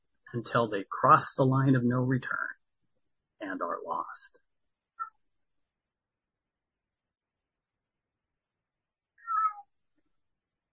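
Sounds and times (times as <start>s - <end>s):
speech: 0.3s - 2.6s, 3.5s - 4.4s
cat meowing faintly in the background: 9.2s - 9.7s.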